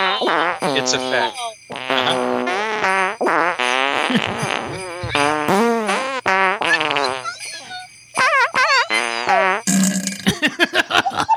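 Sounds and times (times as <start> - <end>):
farting noises playing a Christmas tune: 0.0 - 7.6, 8.2 - 10.4
speech: 0.5 - 2.6, 4.1 - 5.3
laughter: 4.0 - 5.5, 6.6 - 9.4, 10.2 - 11.3.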